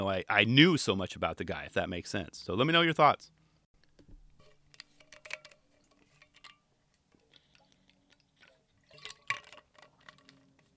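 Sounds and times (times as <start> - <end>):
speech: 0.0 - 3.4
person sipping water: 7.1 - 10.4.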